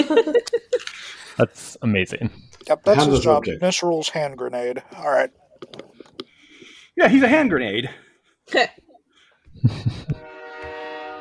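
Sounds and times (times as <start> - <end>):
laughter: 0.0 - 1.4, 9.6 - 10.3
speech: 0.0 - 5.8, 7.0 - 8.8, 9.6 - 10.3
train horn blaring: 10.2 - 11.1.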